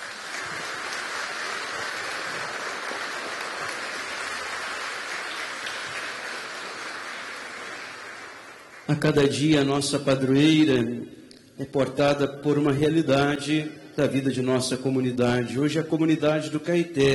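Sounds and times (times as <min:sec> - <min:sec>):
crowd applauding welcoming a guest and priests: 0:00.0 - 0:09.3
speech: 0:08.9 - 0:17.1.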